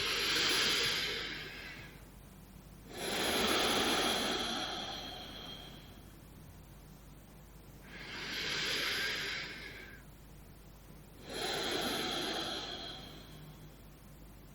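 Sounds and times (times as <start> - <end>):
slow deep breaths: 0.0 - 2.1, 2.8 - 6.2, 7.8 - 10.2, 11.2 - 14.2.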